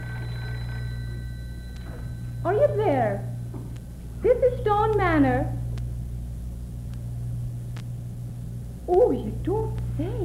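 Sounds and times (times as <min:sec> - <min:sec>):
telephone bell ringing: 0:00.0 - 0:03.3
low hum: 0:00.0 - 0:10.2
speech: 0:02.4 - 0:03.3, 0:04.3 - 0:05.6, 0:08.9 - 0:10.2.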